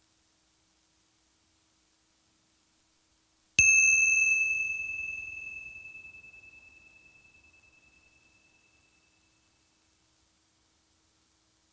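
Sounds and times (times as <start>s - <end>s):
meditation bell ringing: 3.6s - 9.4s.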